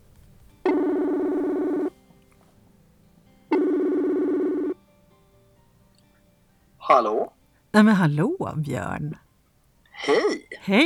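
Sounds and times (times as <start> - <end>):
ringback tone of an outgoing telephone call: 0.6 - 1.9, 3.5 - 4.8
speech: 6.9 - 9.2, 10.0 - 10.8.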